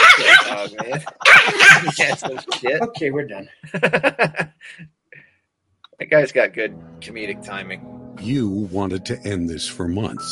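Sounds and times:
dog barking: 0.0s - 0.6s, 1.2s - 2.0s
laughter: 0.0s - 4.8s
speech: 0.6s - 5.0s, 6.0s - 10.3s.

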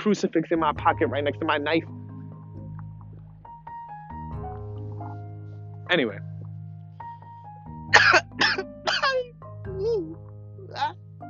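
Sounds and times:
speech: 0.0s - 2.0s, 5.9s - 6.3s
person coughing with a tickle in the throat: 7.9s - 9.2s
throat clearing from a tickle in the throat: 8.0s - 9.2s.

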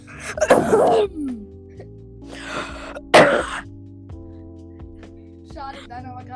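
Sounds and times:
person coughing into a microphone: 0.1s - 1.5s, 2.4s - 3.7s
speech: 0.8s - 1.3s.

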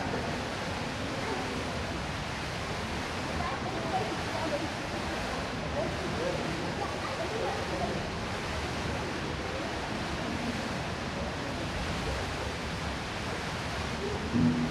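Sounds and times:
faint blurred voices in an indoor swimming pool hall: 0.0s - 14.7s
rushing water echoing in an indoor swimming pool hall: 0.0s - 14.7s
slightly louder knock: 14.4s - 14.7s.

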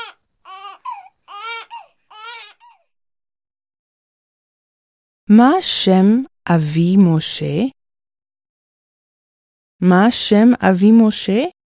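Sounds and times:
young baby crying: 0.0s - 2.9s
speech: 5.3s - 7.8s, 9.8s - 11.6s.

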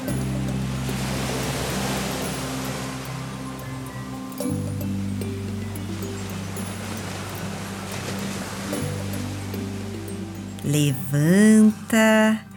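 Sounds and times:
ocean surf: 0.0s - 12.0s
speech: 10.7s - 12.5s.

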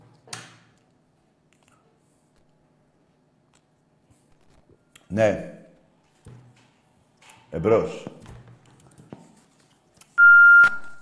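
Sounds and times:
speech: 5.1s - 5.6s, 7.6s - 8.2s
telephone line beep: 10.2s - 10.9s.

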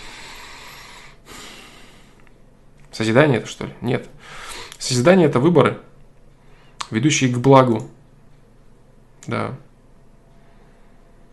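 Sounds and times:
person breathing audibly and deliberately: 0.0s - 2.3s, 4.2s - 4.8s
speech: 3.0s - 5.9s, 6.9s - 8.0s, 9.2s - 9.7s.

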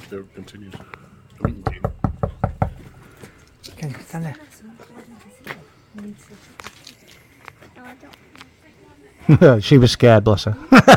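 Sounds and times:
speech: 0.1s - 1.9s, 4.1s - 5.0s, 6.0s - 6.7s, 7.8s - 8.5s, 9.1s - 10.9s
knocking on a door: 1.4s - 2.9s.

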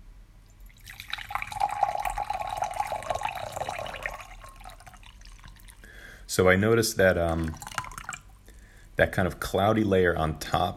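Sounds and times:
brewed tea from a second steeping poured into a vessel: 0.6s - 5.9s, 7.0s - 8.4s
speech: 6.4s - 7.7s, 9.0s - 10.7s.

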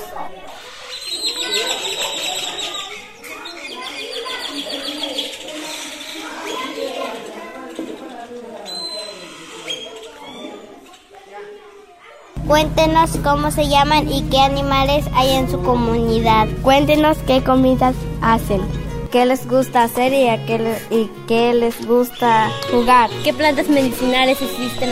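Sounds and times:
chorus of birds calling and chirping: 0.5s - 7.8s, 12.4s - 19.1s, 21.9s - 24.8s
speech: 12.5s - 24.8s.

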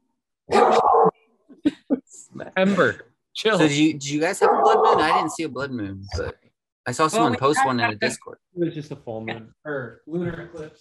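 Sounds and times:
dog barking: 0.5s - 1.1s, 4.4s - 5.3s
speech: 2.2s - 10.8s.

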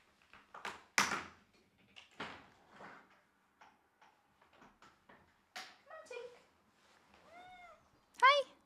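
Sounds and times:
cat meowing at a window: 7.2s - 8.3s.

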